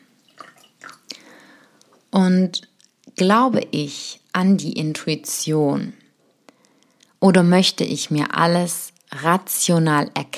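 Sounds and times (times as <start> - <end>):
person pouring water into a glass: 0.0 - 1.5
speech: 2.2 - 6.0, 7.2 - 10.3.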